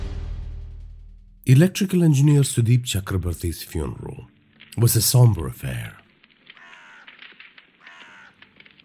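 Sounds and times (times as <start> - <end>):
speech: 1.5 - 6.0
burning funeral pyre crackling: 3.1 - 8.8
crow cawing at a cemetery during a funeral on a grey cloudy day: 6.4 - 8.8.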